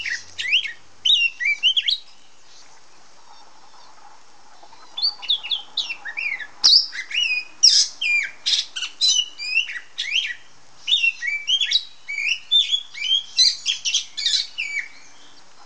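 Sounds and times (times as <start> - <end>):
female Oriental magpie-robin giving whistled notes and harsh scratchy squawks: 0.0 - 2.0, 4.7 - 15.1.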